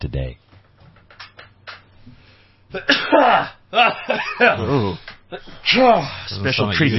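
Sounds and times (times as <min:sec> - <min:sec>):
speech: 0:00.0 - 0:00.5, 0:02.1 - 0:06.9
person sneezing loudly: 0:02.7 - 0:03.6.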